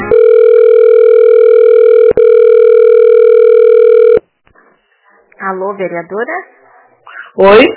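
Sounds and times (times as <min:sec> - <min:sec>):
loud steady telephone busy tone: 0:00.1 - 0:04.2
speech: 0:05.8 - 0:06.6, 0:07.4 - 0:07.7.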